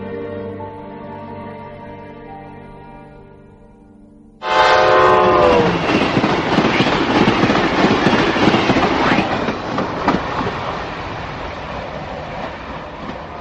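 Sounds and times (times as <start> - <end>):
train horn blast: 4.4 - 6.5
train wheels clattering on rails: 4.5 - 13.3.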